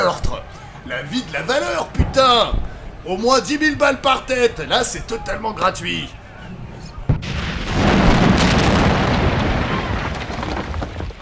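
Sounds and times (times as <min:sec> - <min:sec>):
speech: 0:00.1 - 0:06.2
missile explosion striking an apartment building: 0:07.1 - 0:11.2.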